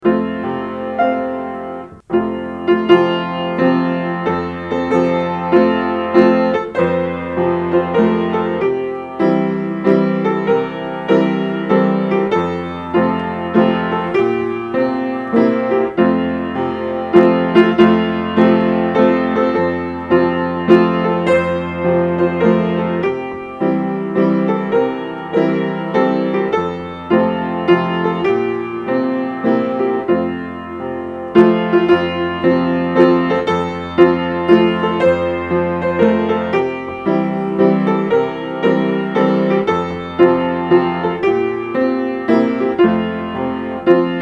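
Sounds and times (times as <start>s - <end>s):
piano: 0.0s - 44.2s.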